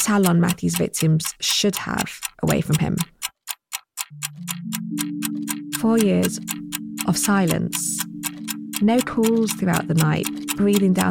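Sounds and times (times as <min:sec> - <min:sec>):
old-fashioned clock ticking: 0:00.0 - 0:11.0
speech: 0:00.1 - 0:03.2, 0:05.8 - 0:08.1, 0:08.8 - 0:11.0.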